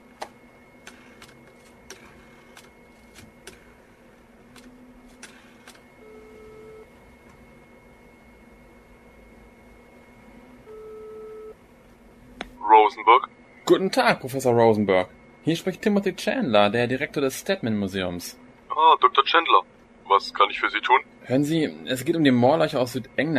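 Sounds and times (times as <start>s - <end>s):
low hum: 0.0s - 23.3s
faint telephone ringback tone while placing a call: 6.0s - 6.9s, 10.6s - 11.6s
speech: 12.9s - 23.3s.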